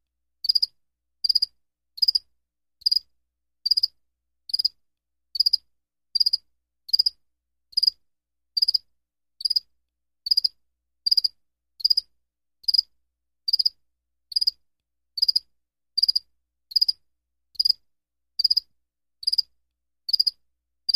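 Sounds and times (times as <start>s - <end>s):
cricket chirping: 0.4s - 2.2s, 2.8s - 3.0s, 3.7s - 3.9s, 4.5s - 4.7s, 5.4s - 5.6s, 6.2s - 7.2s, 7.8s - 8.0s, 8.6s - 8.8s, 9.4s - 9.6s, 10.3s - 10.5s, 11.1s - 12.0s, 12.7s - 12.9s, 13.5s - 14.6s, 15.2s - 15.4s, 16.0s - 17.0s, 18.4s - 19.4s, 20.1s - 20.9s.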